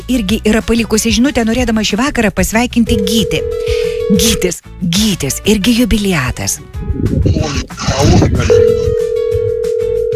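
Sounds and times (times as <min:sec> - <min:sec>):
speech: 0:00.1 - 0:09.1
telephone line tone on a call with echo: 0:03.0 - 0:04.4, 0:08.5 - 0:10.1.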